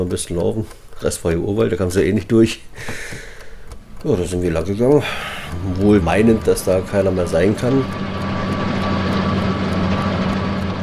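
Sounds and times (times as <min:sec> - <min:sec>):
speech: 0:00.0 - 0:03.3, 0:04.0 - 0:08.1
border guard alarm unit truck driving past at the East German border: 0:03.6 - 0:10.8.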